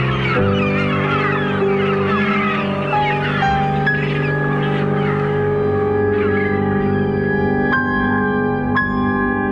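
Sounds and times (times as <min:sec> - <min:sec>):
flock of seagulls calling in flight overhead: 0:00.0 - 0:09.4.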